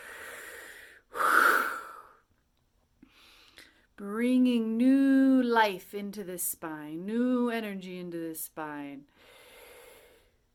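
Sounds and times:
person breathing softly during a guided meditation: 0.0s - 2.2s, 3.0s - 3.9s, 9.1s - 10.5s
speech: 4.2s - 9.3s.

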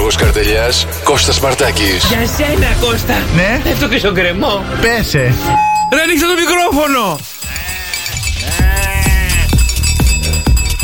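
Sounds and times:
speech: 0.1s - 7.3s
goat and sheep livestock bells clanking: 5.6s - 10.8s.

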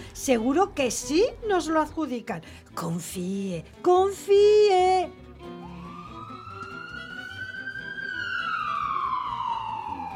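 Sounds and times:
speech: 0.2s - 5.2s
two ambulance sirens wailing: 5.5s - 10.1s.

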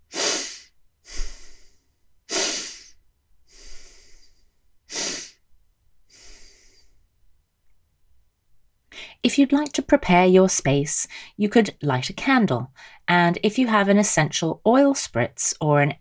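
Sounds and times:
effortless sigh-like exhale in a demonstration breathing exercise: 0.1s - 5.4s
sharp inhale in a demonstration breathing exercise: 0.1s - 5.4s, 6.1s - 7.0s, 8.9s - 9.2s
speech: 9.2s - 15.9s.

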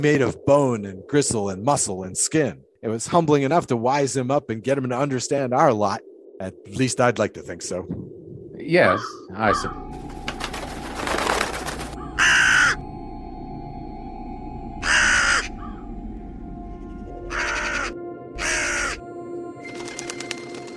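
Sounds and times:
speech: 0.0s - 10.2s
raven cawing: 8.9s - 12.8s, 14.8s - 16.0s, 16.8s - 19.0s.

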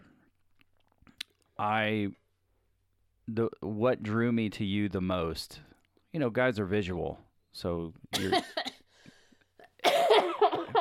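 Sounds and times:
speech: 1.6s - 2.2s, 3.3s - 8.6s
coughing into a microphone: 8.1s - 8.9s, 9.7s - 10.7s.

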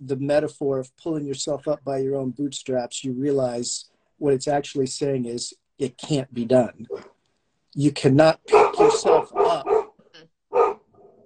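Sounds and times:
speech: 0.0s - 7.1s, 7.7s - 9.7s
dog barking: 6.9s - 7.1s, 8.5s - 11.2s
dog yelping: 8.6s - 10.8s.

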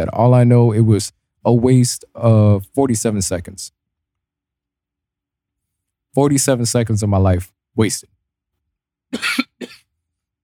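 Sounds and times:
speech: 0.0s - 3.8s, 6.1s - 8.2s, 9.1s - 9.8s
harsh coughs: 9.1s - 9.9s.

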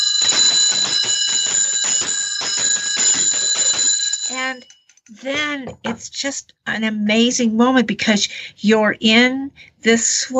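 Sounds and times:
sleigh bells shaken: 0.0s - 5.6s
speech: 4.4s - 10.3s.

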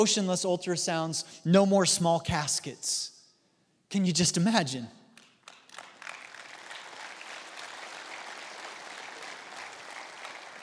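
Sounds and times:
speech: 0.0s - 3.1s, 3.9s - 5.0s
crowd applauding: 5.2s - 10.6s.

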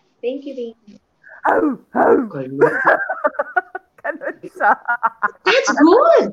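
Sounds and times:
speech: 0.2s - 6.3s
person imitating a dog's bark with their voice: 1.3s - 2.8s
laughter: 2.5s - 6.2s.

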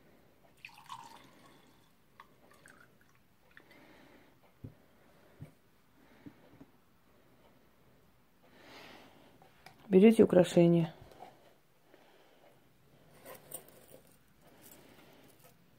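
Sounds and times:
vodka poured into a glass: 0.6s - 3.6s
speech: 9.9s - 11.0s.

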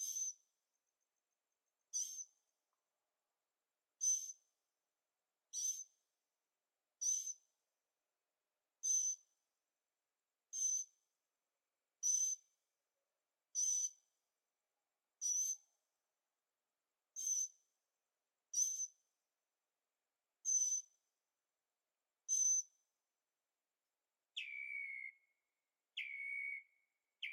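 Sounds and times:
night bird calling in Carefree Arizona: 24.4s - 25.3s, 26.0s - 27.3s.

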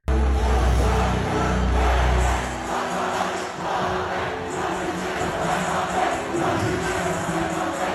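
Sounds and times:
deep booming bass: 0.1s - 2.3s
large festival crowd roaring and cheering at a live concert: 0.1s - 7.9s.

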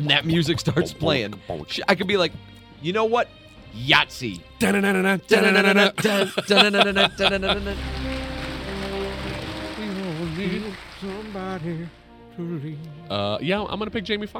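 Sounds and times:
speech: 0.0s - 8.0s, 10.4s - 14.3s
laughter: 4.6s - 8.0s
steady rain: 7.2s - 11.6s.

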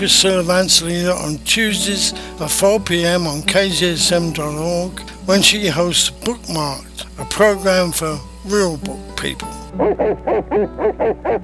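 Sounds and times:
speech: 0.0s - 11.4s
dog howling in short rising-and-falling yowls: 9.8s - 11.4s.

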